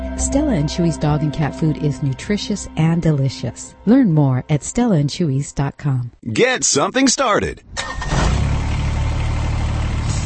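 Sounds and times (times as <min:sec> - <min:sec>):
speech: 0:00.2 - 0:08.2
Kubota VX series subcompact tractor engine running: 0:07.8 - 0:10.2.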